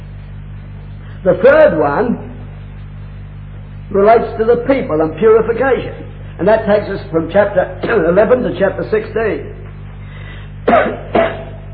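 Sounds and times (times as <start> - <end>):
low steady hum: 0.0 - 11.7
speech: 1.2 - 2.3, 3.9 - 9.6
lecturer coughing: 10.6 - 11.7.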